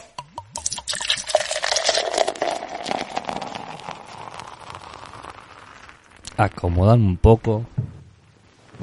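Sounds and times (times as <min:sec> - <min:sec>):
drink poured into a glass in a home living room in San Juan Argentina: 0:00.2 - 0:06.3
speech: 0:06.4 - 0:07.8.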